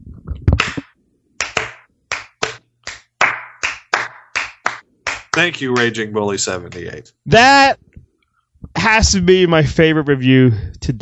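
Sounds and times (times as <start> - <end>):
slow handclaps: 0.6 - 6.0
speech: 5.4 - 7.8, 8.9 - 11.0.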